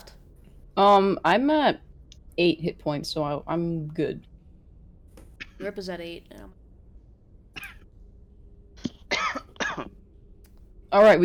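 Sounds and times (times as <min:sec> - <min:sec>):
speech: 0:00.8 - 0:04.3, 0:05.6 - 0:06.6, 0:10.9 - 0:11.2
person coughing: 0:08.8 - 0:09.9.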